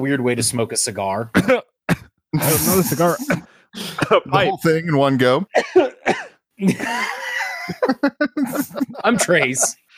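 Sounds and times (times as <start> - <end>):
speech: 0.0 - 5.9, 6.6 - 9.8
person coughing: 1.3 - 4.5, 5.6 - 7.0
laughter: 6.6 - 9.9.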